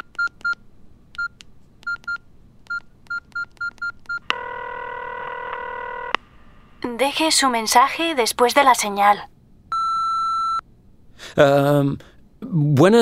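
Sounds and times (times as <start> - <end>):
telephone keypad beeps: 0.0 - 0.6, 1.2 - 4.3, 9.7 - 10.6
speech: 6.8 - 9.3, 11.4 - 13.0.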